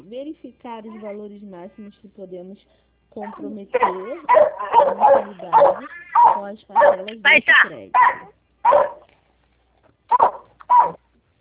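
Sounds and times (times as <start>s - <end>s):
speech: 0.1s - 8.9s
dog barking: 3.2s - 7.1s, 7.9s - 9.1s, 10.1s - 11.0s.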